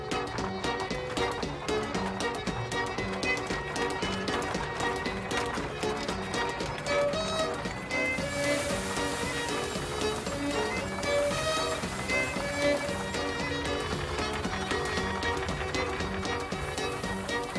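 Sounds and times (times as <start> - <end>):
horse hoof clops: 0.0 - 17.5
horse-powered threshing machine clattering and rattling: 3.2 - 17.5.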